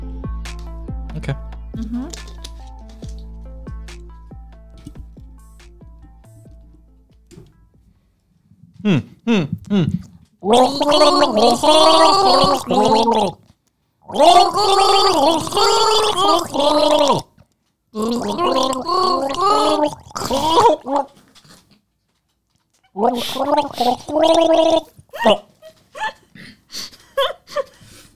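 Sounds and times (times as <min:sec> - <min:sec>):
speech: 0:01.2 - 0:02.4, 0:08.9 - 0:13.4, 0:14.1 - 0:17.2, 0:18.0 - 0:21.2, 0:23.0 - 0:27.7
person gargling water while singing the chorus of a song: 0:08.8 - 0:13.4, 0:14.1 - 0:17.3, 0:18.0 - 0:21.2, 0:23.0 - 0:25.5.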